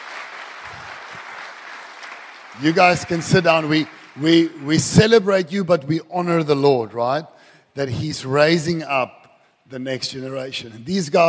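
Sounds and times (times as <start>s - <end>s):
religious congregation clapping: 0.0s - 5.2s
speech: 2.6s - 11.2s.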